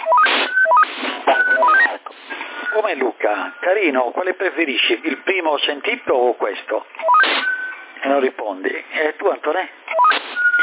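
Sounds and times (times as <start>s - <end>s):
CB radio roger beep stepped electronic tones: 0.0s - 3.7s, 7.0s - 7.8s, 9.9s - 10.6s
hissy band-limited radio static: 0.2s - 3.8s, 7.2s - 7.5s, 10.1s - 10.6s
speech: 2.8s - 9.8s.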